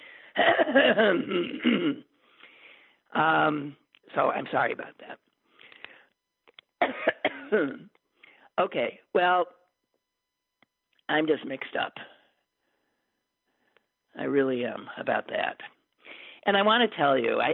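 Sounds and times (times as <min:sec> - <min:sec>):
rough raspy hacking coughs: 0:00.3 - 0:02.1, 0:06.8 - 0:07.9
speech: 0:00.4 - 0:02.1, 0:03.1 - 0:05.2, 0:06.9 - 0:07.9, 0:08.6 - 0:09.6, 0:11.1 - 0:12.1, 0:14.2 - 0:15.8, 0:16.4 - 0:17.5
throat clearing: 0:00.4 - 0:02.1, 0:06.8 - 0:07.9.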